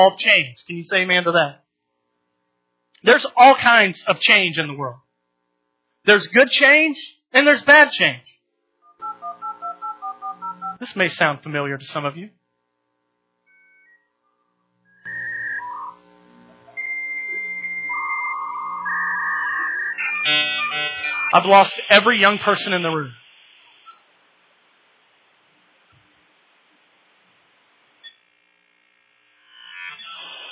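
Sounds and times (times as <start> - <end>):
speech: 0.0 - 1.6, 3.0 - 5.0, 6.0 - 8.4, 10.8 - 12.4, 21.3 - 23.2
dial-up internet modem connecting: 8.9 - 10.8, 15.0 - 24.1.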